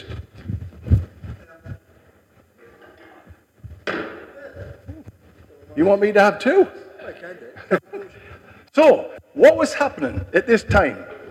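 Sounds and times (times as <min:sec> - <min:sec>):
chair set down on a stage: 0:03.7 - 0:04.4
speech: 0:05.8 - 0:08.2, 0:08.8 - 0:11.1
laughter: 0:07.4 - 0:08.6.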